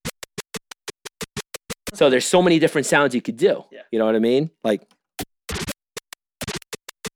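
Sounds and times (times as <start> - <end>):
record scratching on a DJ turntable using the crossfader: 0.0 - 2.6, 5.5 - 5.8, 6.4 - 7.1
speech: 2.0 - 5.0.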